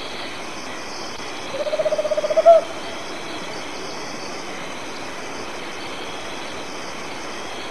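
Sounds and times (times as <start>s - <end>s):
faint background hiss: 0.0s - 7.7s
Tropical Screech-Owl purring trill song in Argentina: 1.5s - 3.0s.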